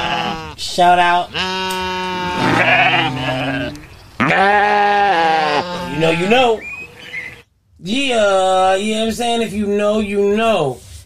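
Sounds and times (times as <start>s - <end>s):
sheep bleating: 0.0s - 6.6s
speech: 0.7s - 3.6s, 4.3s - 5.0s, 6.1s - 6.7s, 7.8s - 10.8s.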